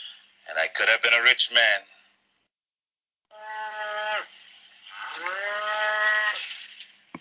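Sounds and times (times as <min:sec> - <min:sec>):
speech: 0:00.6 - 0:01.9
cow mooing: 0:03.3 - 0:04.3, 0:04.9 - 0:06.4.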